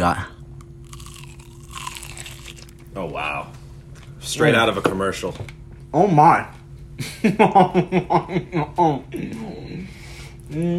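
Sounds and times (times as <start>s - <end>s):
speech: 0.0s - 0.3s, 3.0s - 3.6s, 4.2s - 10.7s
loud chewing crunches: 0.8s - 2.9s
laughter: 7.0s - 9.4s.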